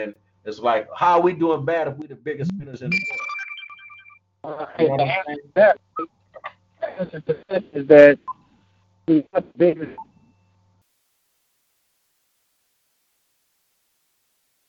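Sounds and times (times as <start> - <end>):
speech: 0.0 - 3.3, 4.4 - 6.1, 7.0 - 8.3, 9.1 - 10.1
choppy garbled voice on a phone call breaking up: 0.0 - 3.4, 4.5 - 8.2
steady electronic phone tone: 2.9 - 4.2.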